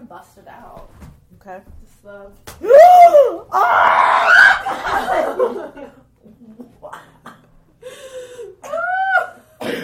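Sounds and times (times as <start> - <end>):
speech: 0.1 - 5.9
people screaming after water spilled on laptop: 2.6 - 5.4, 8.6 - 9.4
people yelling: 2.6 - 5.4
laughter: 4.5 - 7.2.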